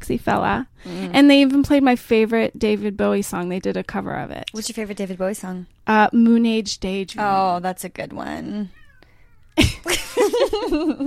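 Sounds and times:
speech: 0.1 - 8.8, 9.6 - 11.0
cat meowing: 8.7 - 9.6.

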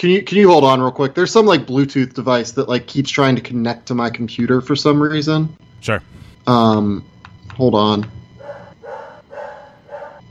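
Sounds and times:
speech: 0.0 - 8.2
dog barking: 8.4 - 10.2.

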